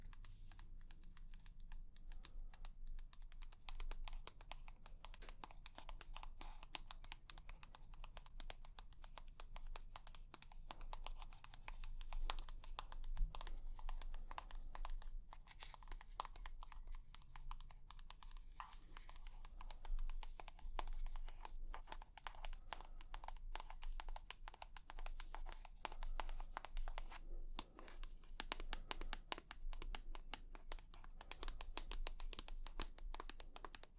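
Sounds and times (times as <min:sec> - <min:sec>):
dense rapid tapping clicks: 0:00.0 - 0:33.9.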